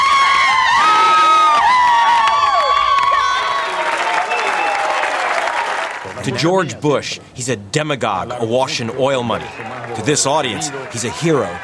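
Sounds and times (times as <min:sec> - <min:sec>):
dense wall of crowd applause: 0:00.0 - 0:06.2, 0:09.4 - 0:11.6
huge crowd of fans and voters screaming and cheering at a live television broadcast in Venezuela: 0:00.0 - 0:06.2, 0:09.3 - 0:11.6
whistles from the crowd: 0:04.2 - 0:05.0
speech: 0:06.3 - 0:11.6.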